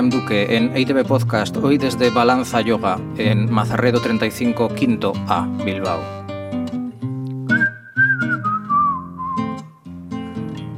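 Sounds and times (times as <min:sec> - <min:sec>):
speech: 0:00.0 - 0:06.2
person whistling a long sliding downward tone: 0:07.4 - 0:09.8.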